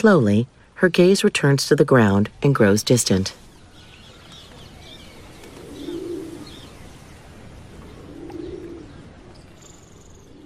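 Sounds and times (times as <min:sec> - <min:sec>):
speech: 0:00.0 - 0:03.4
steady outdoor hiss: 0:00.0 - 0:10.4
pigeons cooing: 0:03.8 - 0:10.4.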